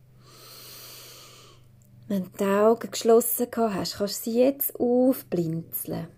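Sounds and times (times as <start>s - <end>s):
slow deep breath drawn in through the nose: 0.2s - 1.6s
speech: 2.1s - 6.1s.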